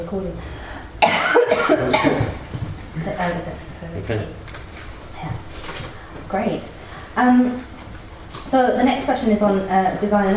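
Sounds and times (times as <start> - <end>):
speech: 0.0 - 0.6, 1.6 - 2.4, 3.0 - 4.5, 6.3 - 7.8, 8.5 - 10.3
person coughing harshly: 1.0 - 2.4
throat clearing: 1.0 - 2.4.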